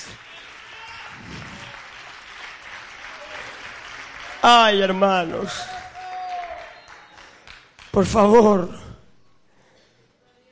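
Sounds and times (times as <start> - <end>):
audience clapping hands in applause: 0.0 - 8.0
speech: 4.4 - 5.8, 8.0 - 8.8.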